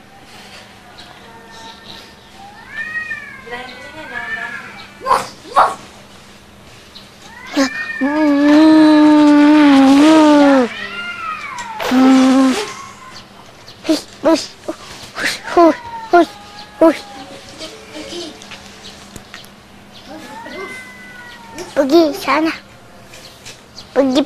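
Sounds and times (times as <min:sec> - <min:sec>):
cats fighting, yowling and meowing: 0:00.3 - 0:05.9, 0:07.2 - 0:18.4, 0:20.0 - 0:22.4.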